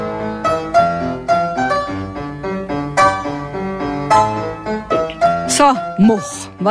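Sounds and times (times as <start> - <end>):
instrumental pop song melody played without singing: 0.0 - 6.7
speech: 5.6 - 6.7.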